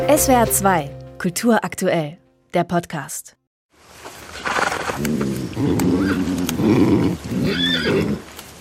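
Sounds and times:
speech: 0.1 - 3.4, 4.4 - 8.3
agitated horse neighing and whinnying while struggling: 4.5 - 8.3.

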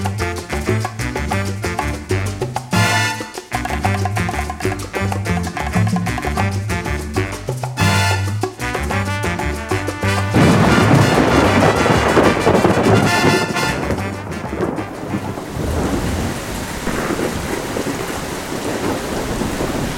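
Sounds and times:
heavy pouring rain heard from under arcades: 0.0 - 19.9
loud rumbling thunder heard from under arcades: 10.2 - 19.9
gusty wind: 10.4 - 19.9.

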